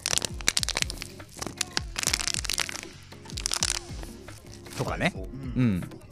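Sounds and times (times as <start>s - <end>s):
thin plastic PET bottle being squeezed and crushed: 0.0s - 4.9s
speech: 4.8s - 6.0s.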